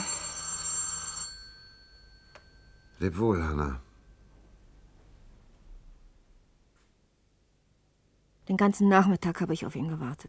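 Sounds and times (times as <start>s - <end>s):
old-fashioned telephone bell ringing: 0.0s - 3.5s
speech: 3.0s - 3.8s, 8.5s - 10.2s.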